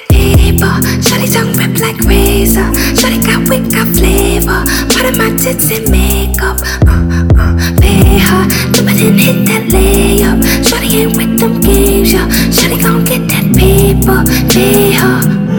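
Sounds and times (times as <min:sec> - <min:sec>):
bass boosted remix: 0:00.1 - 0:15.5.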